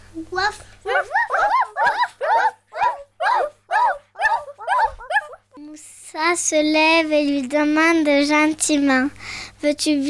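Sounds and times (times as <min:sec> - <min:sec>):
speech: 0:00.1 - 0:01.2, 0:06.3 - 0:10.0
small dog yapping and barking: 0:00.9 - 0:05.6.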